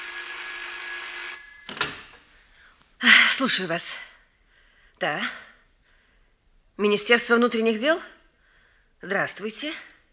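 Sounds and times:
telephone bell ringing: 0:00.0 - 0:02.2
speech: 0:03.4 - 0:04.1, 0:05.0 - 0:05.4, 0:06.8 - 0:08.2, 0:09.0 - 0:09.9.

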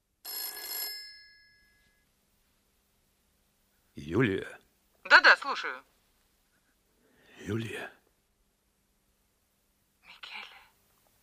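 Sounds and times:
telephone bell ringing: 0:00.2 - 0:02.0
speech: 0:04.0 - 0:04.6, 0:05.6 - 0:06.0, 0:07.5 - 0:08.0.

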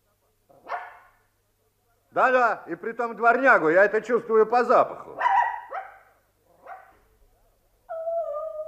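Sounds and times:
dog barking inside a wardrobe: 0:00.6 - 0:01.2, 0:05.2 - 0:07.0
speech: 0:02.2 - 0:05.3
dog whimpering: 0:07.9 - 0:08.6.

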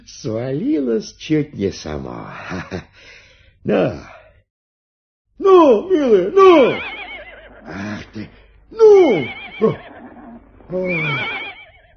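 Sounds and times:
speech: 0:00.0 - 0:04.2, 0:05.4 - 0:07.0, 0:07.6 - 0:09.9, 0:10.7 - 0:11.4
horse hitched to a heavy cart neighing: 0:06.1 - 0:08.1, 0:08.8 - 0:11.9.

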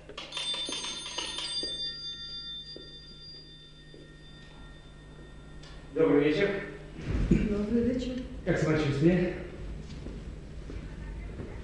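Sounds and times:
electric doorbell ringing: 0:00.0 - 0:07.0
low hum: 0:00.0 - 0:11.6
speech: 0:06.0 - 0:06.7, 0:07.6 - 0:09.4.

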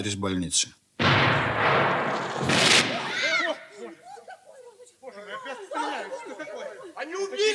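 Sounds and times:
speech: 0:00.0 - 0:01.8
roaring explosion: 0:01.0 - 0:03.3
hissing burst: 0:01.0 - 0:03.5
laughter: 0:03.2 - 0:07.5.

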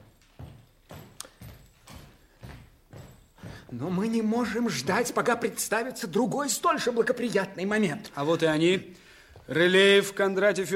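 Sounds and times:
footsteps of two men approaching on a hard floor: 0:00.0 - 0:05.2, 0:09.2 - 0:09.6
speech: 0:03.7 - 0:10.7.

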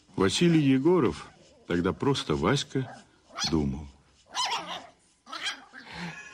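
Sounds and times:
speech: 0:00.2 - 0:03.9
tiny dog barking while running across an oilcloth-covered dining table: 0:04.3 - 0:05.8.

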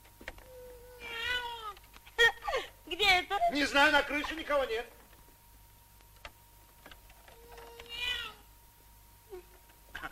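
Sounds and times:
low steady hum: 0:00.0 - 0:10.1
cat meowing: 0:00.5 - 0:01.8, 0:07.4 - 0:08.5
speech: 0:03.5 - 0:05.0.

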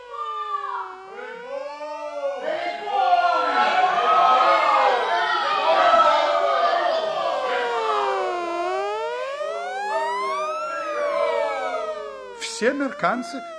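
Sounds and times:
several sirens wailing in New York near a station: 0:00.0 - 0:13.5
speech: 0:12.6 - 0:13.5.

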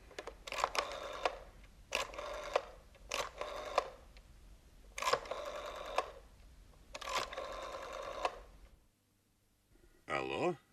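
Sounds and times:
telephone number being dialed with mechanical clicking and whirring: 0:00.2 - 0:04.1, 0:05.0 - 0:06.2, 0:07.0 - 0:08.6.

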